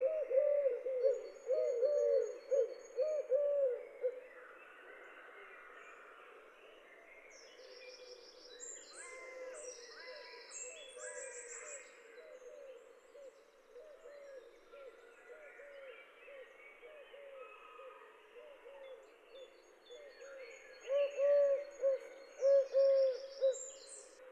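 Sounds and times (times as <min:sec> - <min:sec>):
Eurasian collared dove cooing: 0:00.0 - 0:04.2, 0:20.9 - 0:23.6.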